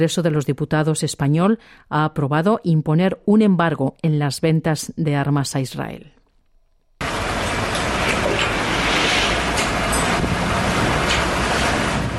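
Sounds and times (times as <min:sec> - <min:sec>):
speech: 0:00.0 - 0:06.2
aid trucks rumbling past: 0:07.0 - 0:12.1
wind buffeting the microphone: 0:07.1 - 0:12.1.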